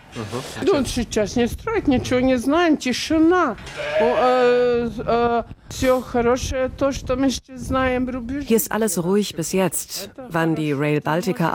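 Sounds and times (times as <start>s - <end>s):
speech: 0.2s - 11.5s
sheep bleating in a stable on a family farm: 3.7s - 4.6s.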